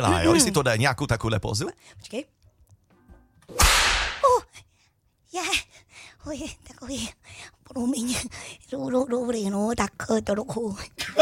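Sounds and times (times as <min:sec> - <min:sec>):
speech: 0:00.0 - 0:02.4, 0:05.3 - 0:11.1
loud whip crack with hissing tail: 0:03.5 - 0:04.3.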